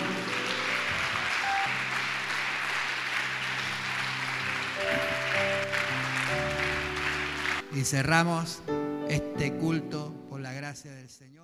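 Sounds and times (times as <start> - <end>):
audience applauding: 0.0 - 7.9
sustained keyboard chords: 0.0 - 10.5
speech: 7.8 - 11.4.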